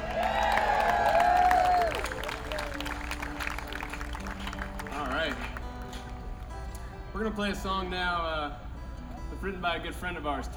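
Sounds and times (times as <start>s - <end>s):
crowd clapping and cheering for a local band: 0.0s - 7.0s
speech: 7.2s - 8.6s, 9.4s - 10.5s.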